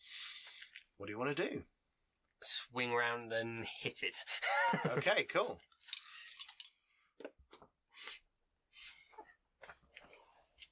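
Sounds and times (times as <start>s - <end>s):
speech: 1.0s - 1.8s, 2.4s - 5.7s
dice clattering and tumbling across a table: 5.4s - 6.8s.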